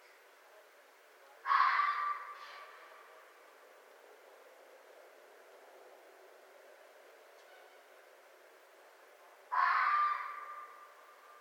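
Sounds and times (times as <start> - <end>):
faint background hiss: 0.0 - 11.3
red fox hoarse scream: 1.5 - 2.8, 9.5 - 10.9.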